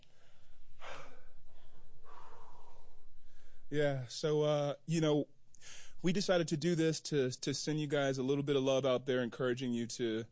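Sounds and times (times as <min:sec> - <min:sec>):
heavy breathing catching breath after exertion: 0:00.0 - 0:03.8, 0:05.6 - 0:06.0
speech: 0:03.7 - 0:10.3.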